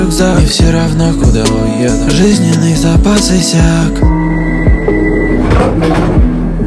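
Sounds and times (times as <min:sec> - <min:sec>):
speech: 0:00.0 - 0:04.6, 0:05.6 - 0:06.6
steady electronic tone: 0:04.0 - 0:06.6
subway car doors sliding shut with pneumatic hissing: 0:04.2 - 0:06.6.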